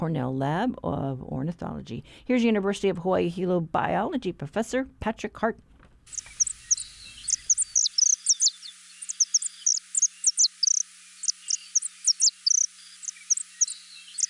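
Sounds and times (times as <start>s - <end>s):
speech: 0.0s - 6.4s
saffron finch singing: 6.1s - 14.2s.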